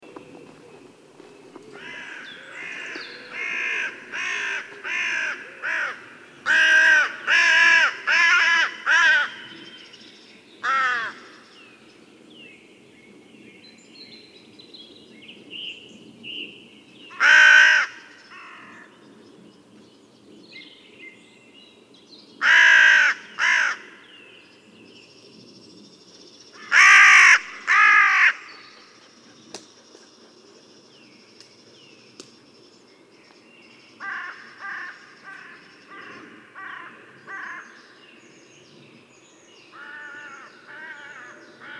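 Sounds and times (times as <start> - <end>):
carrion crow calling: 1.5 - 9.7, 10.6 - 11.5, 17.1 - 18.9, 22.4 - 24.0, 26.6 - 28.7, 34.0 - 38.0, 39.7 - 41.7.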